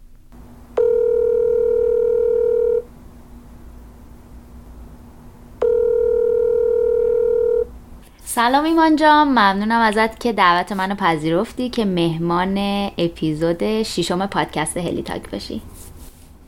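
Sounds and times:
faint low hum: 0:00.0 - 0:16.4
telephone line tone while placing a call: 0:00.8 - 0:02.8, 0:05.6 - 0:07.7
speech: 0:08.4 - 0:15.7.

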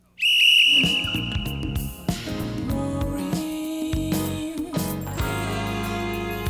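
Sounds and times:
bright sustained whistle-like tone in a song: 0:00.2 - 0:02.0
dense band music with no voices: 0:00.8 - 0:06.4.

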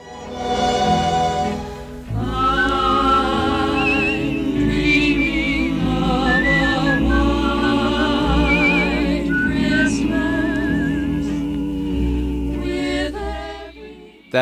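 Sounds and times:
lush orchestral backing: 0:00.0 - 0:14.4
group of women singing: 0:00.1 - 0:14.3
man whistling a wavering melody: 0:02.4 - 0:11.5.

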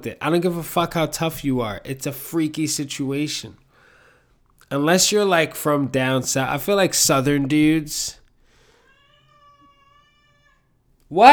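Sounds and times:
speech: 0:00.0 - 0:03.6, 0:04.7 - 0:08.2, 0:11.1 - 0:11.3
cat meowing: 0:08.7 - 0:11.3.

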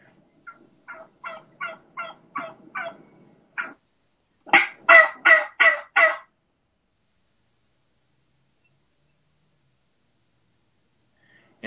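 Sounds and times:
wild turkey hen yelping: 0:00.4 - 0:03.0, 0:03.6 - 0:03.8, 0:04.5 - 0:06.3.

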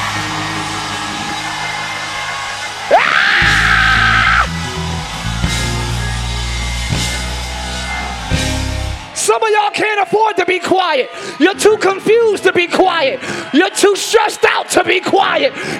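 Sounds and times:
large audience at a church sermon screaming and yelling: 0:00.0 - 0:15.7
sustained shrill cry: 0:02.8 - 0:04.5
speech: 0:09.7 - 0:15.7.

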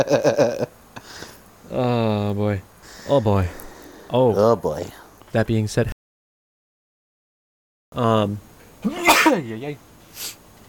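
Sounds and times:
speech: 0:00.0 - 0:05.9, 0:08.0 - 0:10.4
soft sniff: 0:01.0 - 0:01.4, 0:02.8 - 0:04.1, 0:10.0 - 0:10.4
person sneezing: 0:08.9 - 0:09.4.

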